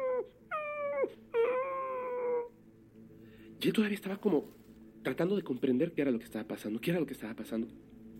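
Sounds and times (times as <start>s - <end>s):
dog whimpering and yelping: 0.0s - 2.6s
speech: 3.6s - 7.9s.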